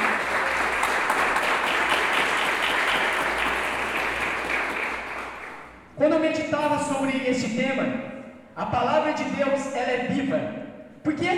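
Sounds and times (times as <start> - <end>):
audience applauding: 0.0 - 5.7
speech: 6.0 - 11.3.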